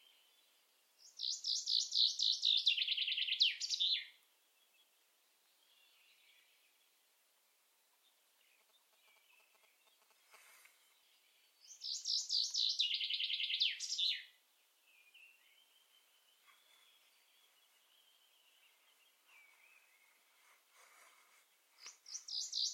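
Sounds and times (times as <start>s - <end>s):
common chaffinch singing a fast tumbling phrase: 0.0s - 6.9s, 7.9s - 20.6s, 21.5s - 22.7s
faint click: 8.6s - 10.8s, 21.8s - 22.0s.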